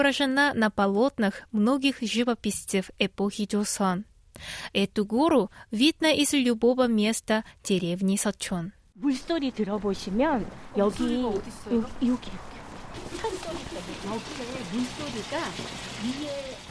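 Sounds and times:
speech: 0:00.0 - 0:12.5, 0:13.1 - 0:16.6
small stream babbling: 0:12.4 - 0:16.6.

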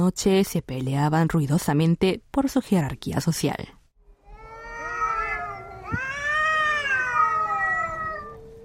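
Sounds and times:
speech: 0:00.0 - 0:03.8
two stray cats in heat yowling and caterwauling in a vacant lot: 0:04.2 - 0:08.6.

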